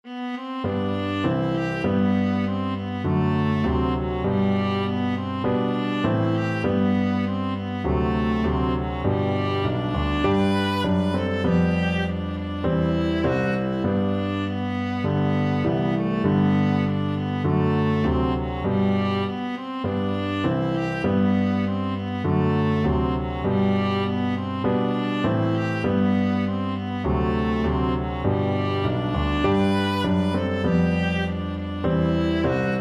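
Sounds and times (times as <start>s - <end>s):
viola melody: 0.0s - 32.8s.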